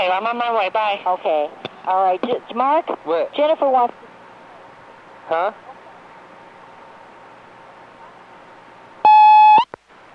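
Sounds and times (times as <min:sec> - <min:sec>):
speech: 0:00.0 - 0:04.0, 0:05.3 - 0:05.7
answering machine beep: 0:09.1 - 0:09.7.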